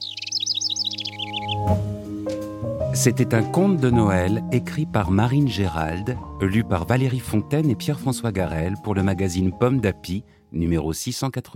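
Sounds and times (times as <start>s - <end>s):
small green kinglet chirping: 0.0s - 1.8s
speech: 3.0s - 11.5s.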